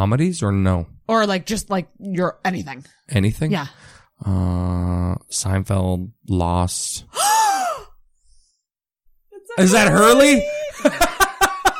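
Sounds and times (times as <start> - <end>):
speech: 0.0 - 7.3, 9.6 - 11.1
breathy voiced surprised gasp: 7.1 - 8.0
laughter: 10.0 - 11.7.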